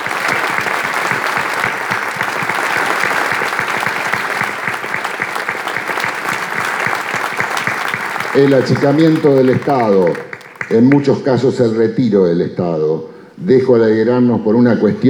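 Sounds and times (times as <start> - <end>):
loud applause in a municipal council chamber: 0.0 - 11.5
speech: 8.4 - 15.0.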